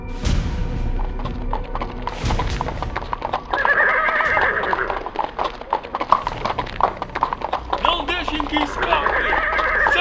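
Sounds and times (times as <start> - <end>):
clatter of horse hooves in the streets: 0.3 - 9.9
cavalry horses neighing: 2.1 - 9.9.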